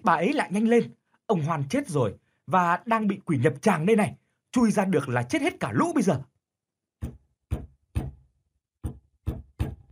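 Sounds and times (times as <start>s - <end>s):
speech: 0.0s - 6.3s
person pounding on a coffin lid from inside: 7.0s - 9.9s.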